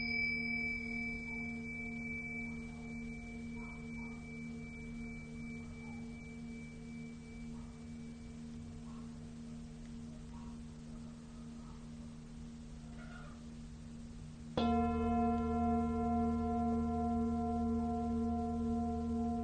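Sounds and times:
Tibetan singing bowl ringing: 0.0 - 9.6, 14.6 - 19.4.

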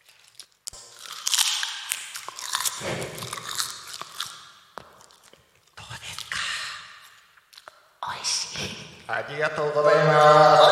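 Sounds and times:
crunching bites of food: 0.0 - 6.3
moist chewing and smacking: 0.0 - 7.8
speech: 2.8 - 3.4, 9.1 - 10.7
laughter: 9.6 - 10.7.

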